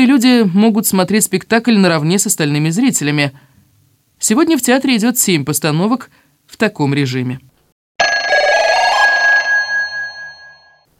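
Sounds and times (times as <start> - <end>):
speech: 0.0 - 3.6, 4.2 - 7.5
rattling metallic telephone bell ringing: 8.0 - 10.9.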